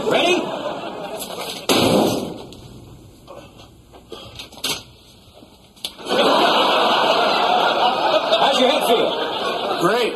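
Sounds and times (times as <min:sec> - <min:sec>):
laughter: 0:00.0 - 0:01.7, 0:05.9 - 0:10.1
door slamming shut: 0:01.7 - 0:02.5.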